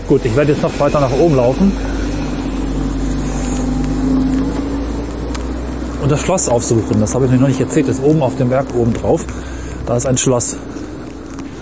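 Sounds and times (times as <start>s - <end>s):
car driving by with low engine rumble: 0.0s - 11.6s
faint tonal hum: 0.0s - 11.6s
speech: 0.1s - 2.0s, 6.0s - 10.8s.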